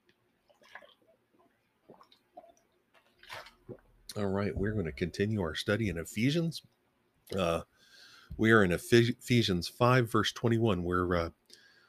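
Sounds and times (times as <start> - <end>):
sipping a drink of water: 0.4 - 5.1
swallowing: 0.5 - 4.2
brief louder splashy rustle: 3.0 - 3.8
speech: 4.2 - 7.7, 8.4 - 11.4.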